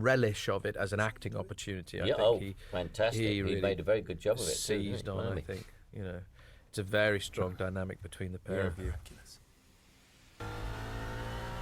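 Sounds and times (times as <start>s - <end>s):
speech: 0.0s - 9.4s
car engine revving: 10.4s - 11.6s.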